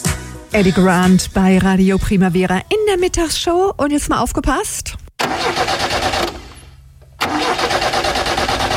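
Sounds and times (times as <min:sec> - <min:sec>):
speech: 0:00.5 - 0:05.0
car engine cranking but failing to start: 0:05.2 - 0:08.7.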